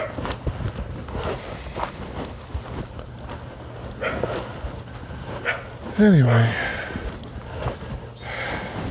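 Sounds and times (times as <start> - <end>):
stirred up dogs barking: 0.0 - 0.4, 4.0 - 4.5, 5.4 - 5.8
steady outdoor rumble: 0.0 - 8.8
speech: 6.0 - 6.6.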